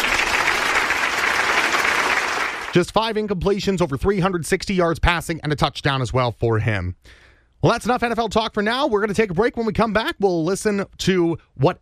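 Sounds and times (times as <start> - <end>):
applause: 0.0 - 2.9
speech: 2.8 - 11.8.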